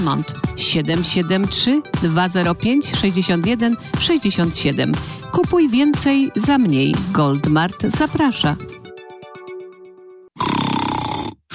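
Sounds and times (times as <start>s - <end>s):
speech: 0.0s - 8.9s
rhythmic musical tones: 0.0s - 10.2s
man snoring: 10.4s - 11.5s.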